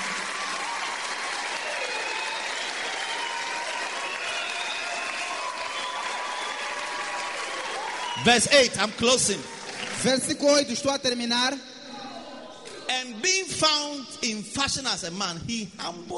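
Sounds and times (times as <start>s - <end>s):
church congregation applauding: 0.0s - 10.8s
speech: 8.2s - 11.7s, 13.1s - 16.1s.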